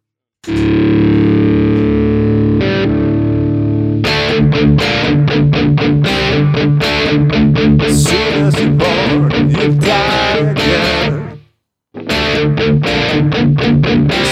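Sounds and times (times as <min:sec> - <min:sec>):
heavily distorted electric guitar chord and riff: 0:00.4 - 0:14.3.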